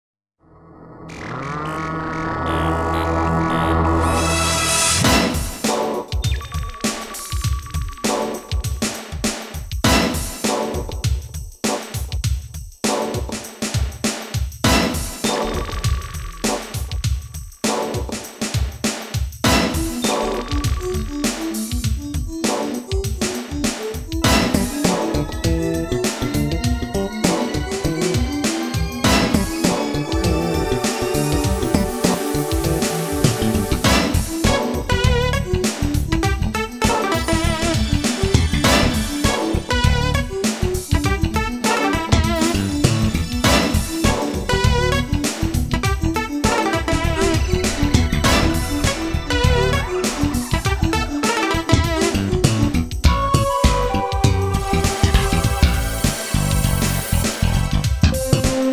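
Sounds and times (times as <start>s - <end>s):
groovy music: 2.5s - 58.7s.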